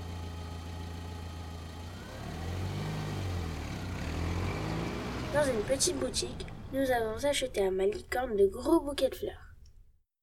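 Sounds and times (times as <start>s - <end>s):
car engine idling then revving and accelerating: 0.0s - 7.6s
speech: 5.4s - 9.4s.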